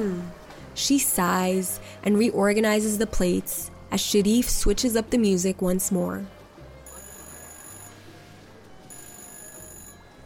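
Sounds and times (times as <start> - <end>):
speech: 0.0 - 6.4
telephone ringing with bright trilling tone: 6.8 - 8.1, 8.9 - 10.2.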